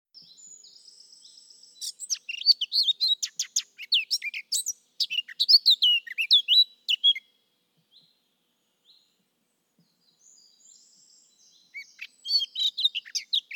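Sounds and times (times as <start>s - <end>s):
Eurasian blackcap Sylvia atricapilla warbling song: 0.2s - 8.2s, 9.8s - 13.5s.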